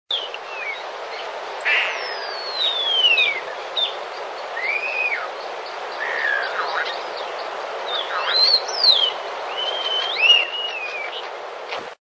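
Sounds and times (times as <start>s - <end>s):
common starling calling: 0.1s - 11.4s.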